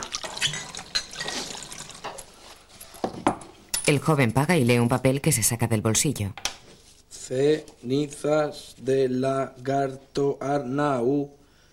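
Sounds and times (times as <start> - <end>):
liquid poured to refill a bottle at a tavern bar: 0.0 - 2.6
speech: 3.9 - 6.5, 7.3 - 11.4.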